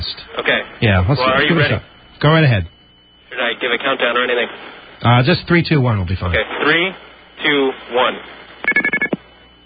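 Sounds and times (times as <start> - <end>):
speech: 0.4 - 2.8, 3.6 - 9.1
payphone red box two-tone coin beeps: 8.7 - 9.2.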